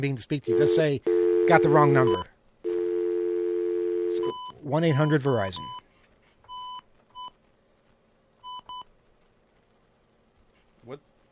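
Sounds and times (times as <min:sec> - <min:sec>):
speech: 0:00.0 - 0:02.3, 0:04.1 - 0:05.8, 0:10.9 - 0:11.1
faint hum: 0:00.0 - 0:11.3
touch-tone phone dialing beeps: 0:00.5 - 0:04.5, 0:06.5 - 0:07.3
brief soft rustle: 0:05.7 - 0:11.3.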